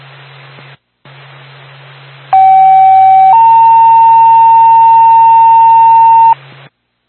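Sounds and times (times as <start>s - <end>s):
emergency dispatch paging tone for an ambulance over radio: 2.4s - 6.4s.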